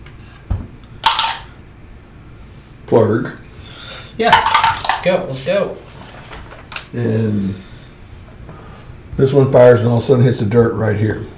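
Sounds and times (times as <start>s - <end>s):
four-sided die rolling and clattering: 1.0s - 1.5s, 4.3s - 5.2s
speech: 2.9s - 3.4s, 4.2s - 5.9s, 6.9s - 7.7s, 9.2s - 11.3s.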